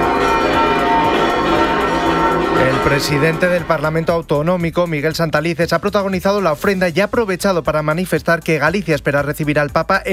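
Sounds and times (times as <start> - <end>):
cathedral church bells pealing during a Galicia Day celebration mass: 0.0 - 4.3
speech: 2.8 - 10.1.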